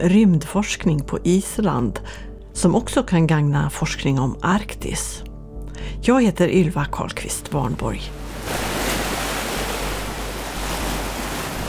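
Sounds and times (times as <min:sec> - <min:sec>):
speech: 0:00.0 - 0:08.7
ocean waves at the seashore in Reykjavik: 0:08.1 - 0:11.6.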